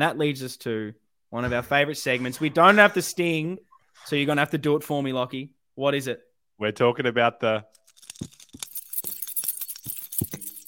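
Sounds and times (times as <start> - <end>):
speech: 0.0 - 8.4
bunch of keys jangling: 7.8 - 10.6.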